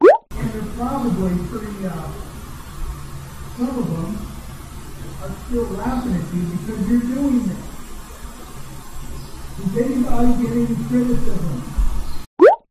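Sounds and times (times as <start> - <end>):
muffled voices through ceiling from upstairs neighbor's apartment: 0.3 - 12.0
low hum: 0.3 - 12.3.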